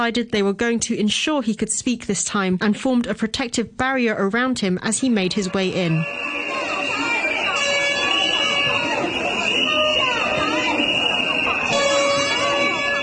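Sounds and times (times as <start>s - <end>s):
speech: 0.0s - 6.4s
air horns blaring: 5.0s - 13.0s
rowdy crowd of shouting voices: 5.0s - 13.0s
shrill whistles blown by lawmakers: 5.2s - 13.0s.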